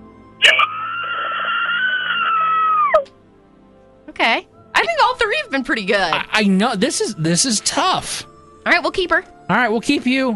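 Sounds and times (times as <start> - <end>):
woman screaming: 0.4 - 3.1
speech: 5.6 - 10.3.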